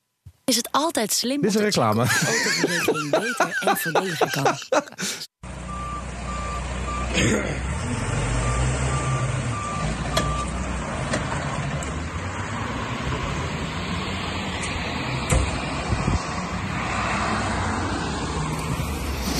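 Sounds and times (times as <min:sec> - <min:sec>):
speech: 0:00.5 - 0:05.3, 0:07.2 - 0:08.0
road noise: 0:00.8 - 0:19.3
laughter: 0:01.9 - 0:05.3
reversing truck engine rumble: 0:05.4 - 0:19.3
truck backup alarm beeping: 0:05.7 - 0:07.1, 0:08.4 - 0:10.5.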